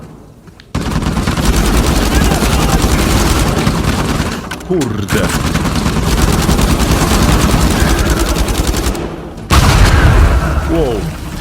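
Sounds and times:
video game explosions of mummies blowing up: 0.7s - 11.3s
speech: 4.7s - 5.6s.

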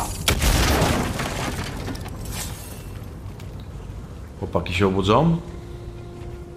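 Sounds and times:
fuel barrels exploding: 0.2s - 2.3s
speech: 4.5s - 5.6s.

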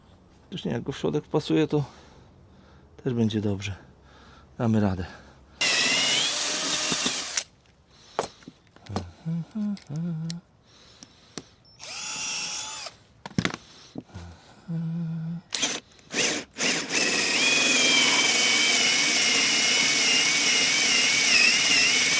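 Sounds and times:
speech: 0.5s - 2.0s, 3.0s - 3.9s, 4.6s - 5.2s, 9.3s - 10.5s, 14.7s - 15.1s
power drill boring a 27 mm hole into soft partly rotted wood: 5.6s - 7.5s, 11.8s - 13.0s, 15.5s - 22.1s.

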